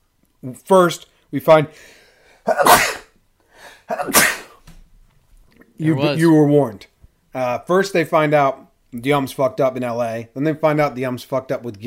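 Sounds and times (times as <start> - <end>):
speech: 0.4 - 3.0, 3.9 - 4.4, 5.8 - 11.8
person sneezing: 2.4 - 4.6.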